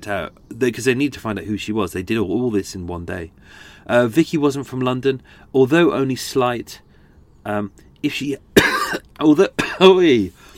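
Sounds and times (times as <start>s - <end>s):
speech: 0.0s - 6.8s, 7.4s - 10.4s
person coughing: 8.6s - 9.0s, 9.6s - 9.9s.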